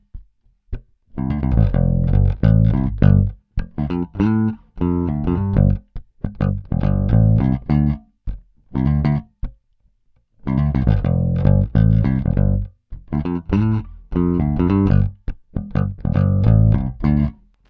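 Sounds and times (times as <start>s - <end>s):
electric guitar humbucker pickup tone: 1.2s - 8.0s, 10.6s - 17.3s.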